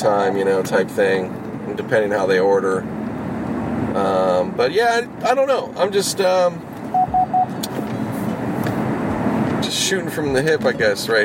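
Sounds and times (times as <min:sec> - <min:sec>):
speech: 0:00.0 - 0:03.0, 0:03.9 - 0:06.7, 0:09.7 - 0:11.2
road and engine noise inside a moving car: 0:00.0 - 0:11.2
car lane departure warning beeps: 0:06.9 - 0:07.6.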